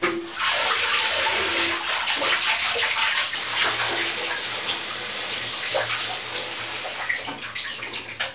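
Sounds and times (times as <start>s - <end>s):
shower running: 0.0s - 8.3s.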